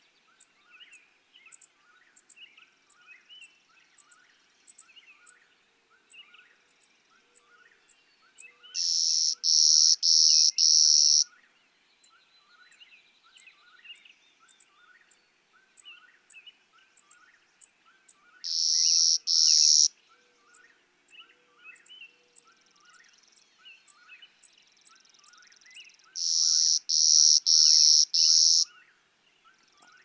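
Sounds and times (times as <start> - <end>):
clay-colored sparrow buzzy song: 0.0 - 30.0
chorus of other birds chipping and warbling: 18.5 - 19.9, 26.2 - 28.7.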